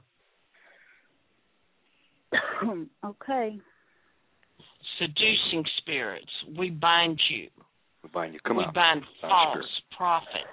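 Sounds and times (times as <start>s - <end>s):
faint breathing: 0.5s - 1.2s, 3.6s - 4.8s
person coughing: 2.3s - 2.9s
speech: 2.6s - 3.7s, 5.0s - 10.5s.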